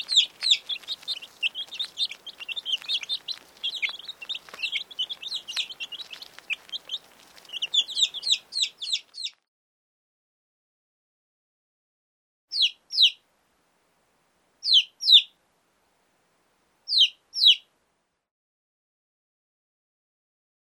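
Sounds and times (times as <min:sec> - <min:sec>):
birds chirping: 0:00.0 - 0:09.4, 0:12.5 - 0:13.2, 0:14.6 - 0:15.3, 0:16.9 - 0:17.7.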